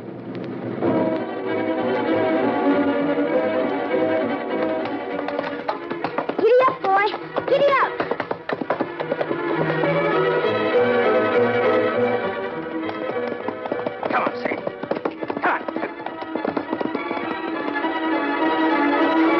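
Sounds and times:
sustained tonal background: 0.7s - 19.3s
horse hooves clip-clopping: 4.3s - 19.3s.

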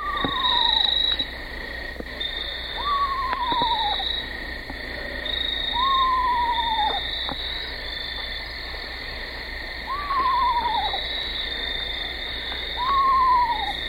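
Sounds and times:
adult Eastern screech owl tremolo whinny call: 0.0s - 1.3s, 2.8s - 4.2s, 5.6s - 7.0s, 9.9s - 11.1s, 12.8s - 13.8s
chorus of frogs: 0.0s - 13.8s
insects chirping: 0.0s - 13.8s.

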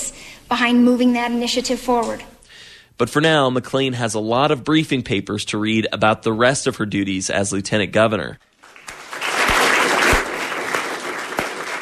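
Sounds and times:
speech: 0.5s - 2.3s, 3.0s - 8.5s
crowd of students clapping and cheering in an echoing school hallway: 8.6s - 11.8s.

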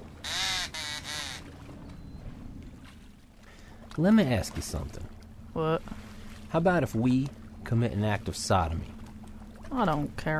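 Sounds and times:
rasping quacks from a blown duck call: 0.2s - 1.4s
speech: 4.0s - 9.0s, 9.7s - 10.3s.

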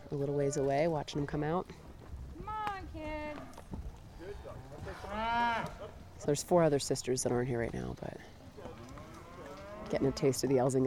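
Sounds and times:
faint hoof clatter of a driven herd: 0.0s - 10.8s
speech: 0.1s - 1.9s, 2.9s - 8.4s, 9.9s - 10.8s
cows mooing while being herded: 4.7s - 6.0s, 8.6s - 10.5s.

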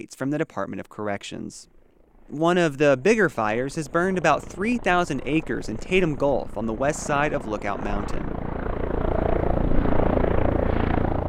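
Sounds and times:
speech: 0.0s - 8.4s
firefighting helicopter flying: 0.6s - 11.2s.

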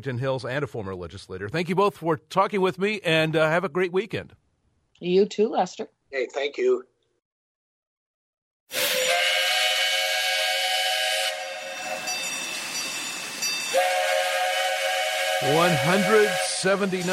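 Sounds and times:
speech: 0.0s - 4.4s, 5.0s - 6.9s, 15.4s - 17.1s
rumbling train noise: 8.7s - 17.1s
steam locomotive whistle: 8.7s - 17.1s.

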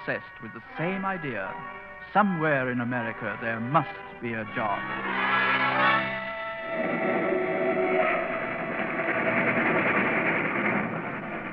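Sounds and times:
speech: 0.0s - 5.9s
heavy freight train rumble and clatter near Plattsville: 0.0s - 11.5s
freight train horn blaring: 3.0s - 9.7s.

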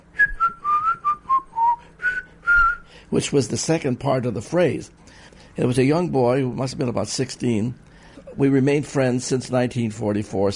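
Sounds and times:
person whistling a classical string quartet theme: 0.1s - 2.9s
speech: 3.1s - 5.0s, 5.6s - 7.8s, 8.4s - 10.5s.

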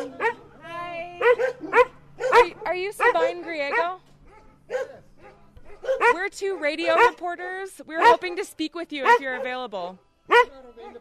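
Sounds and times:
dog barking at a house with a beware-of-dog sign: 0.0s - 0.4s, 1.2s - 7.2s, 8.0s - 8.4s, 9.0s - 9.6s, 10.3s - 10.9s
speech: 2.8s - 4.0s, 6.0s - 10.9s.

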